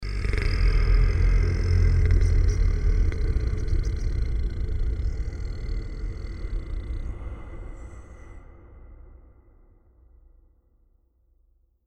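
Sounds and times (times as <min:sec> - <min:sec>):
monster growling: 0:00.0 - 0:07.6.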